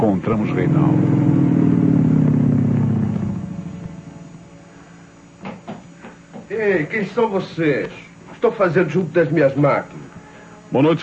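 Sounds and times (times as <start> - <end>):
speech: 0.0 - 1.7, 6.6 - 10.1, 10.7 - 11.0
motorcycle engine rumbling: 0.0 - 4.7.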